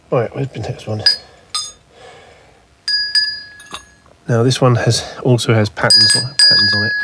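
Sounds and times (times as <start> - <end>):
speech: 0.1 - 1.2, 4.3 - 7.0
deep metal bell being struck and ringing: 1.0 - 1.8, 2.9 - 4.0, 5.9 - 7.0.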